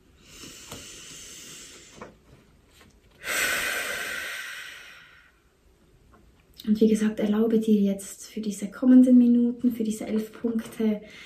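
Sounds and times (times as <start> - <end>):
deep breath in and out: 0.0 - 2.1, 3.2 - 5.6, 11.0 - 11.2
speech: 6.6 - 11.2.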